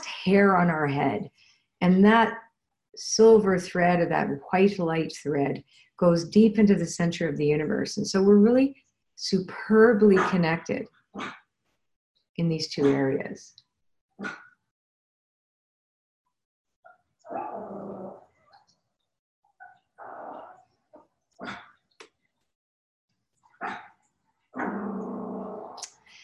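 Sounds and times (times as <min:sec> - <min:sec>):
speech: 0:00.2 - 0:11.4, 0:12.4 - 0:13.6, 0:14.2 - 0:14.4
small dog barking and growling: 0:17.3 - 0:18.2, 0:24.6 - 0:25.8.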